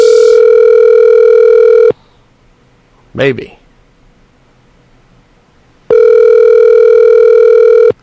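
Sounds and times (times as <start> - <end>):
telephone ringback tone while placing a call: 0.0 - 1.9, 5.9 - 8.0
speech: 3.2 - 3.6.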